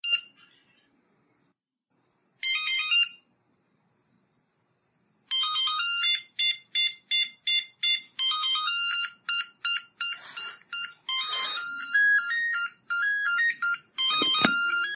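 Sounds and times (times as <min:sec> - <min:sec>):
Arabic song ringtone on a Nokia phone: 0:00.0 - 0:00.4, 0:02.4 - 0:03.4, 0:05.3 - 0:14.9.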